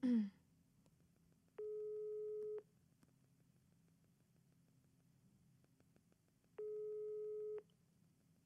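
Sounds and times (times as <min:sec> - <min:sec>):
unanswered telephone call ringback tones: 0:01.6 - 0:02.6, 0:06.6 - 0:07.6.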